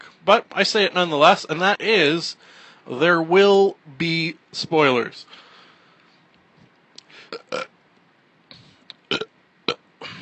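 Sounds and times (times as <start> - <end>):
speech: 0.2 - 5.4, 7.3 - 7.7
loud burp into a boom microphone: 7.3 - 7.7, 9.1 - 10.1.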